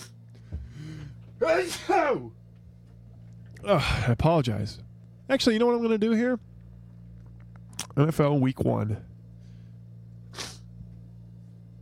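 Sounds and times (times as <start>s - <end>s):
steady low hum: 0.0s - 11.7s
speech: 1.4s - 2.4s, 3.6s - 6.5s, 8.0s - 9.1s
loud sneeze with forceful voiced bursts: 10.3s - 10.7s.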